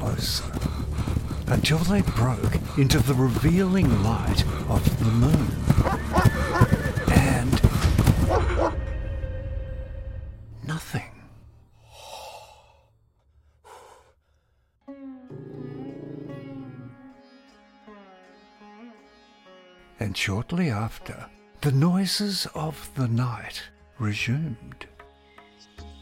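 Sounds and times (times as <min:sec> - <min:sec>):
horse hooves pounding: 0:00.0 - 0:08.8
speech: 0:00.2 - 0:00.6, 0:01.5 - 0:06.7, 0:20.3 - 0:24.9
horse snorting: 0:05.2 - 0:08.8, 0:15.3 - 0:17.0
horse neighing: 0:05.8 - 0:07.5, 0:15.3 - 0:17.0.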